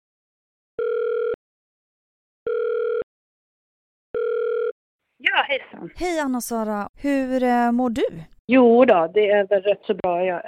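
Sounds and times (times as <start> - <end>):
telephone ringback tone while placing a call: 0.8 - 1.4, 2.5 - 3.0, 4.2 - 4.8
speech: 5.2 - 10.4.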